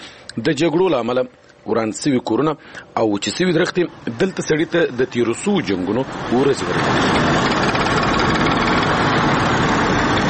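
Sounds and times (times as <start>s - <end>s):
speech: 0.4s - 7.6s
old motorcycle engine droning with a rough knocking texture: 5.7s - 10.2s.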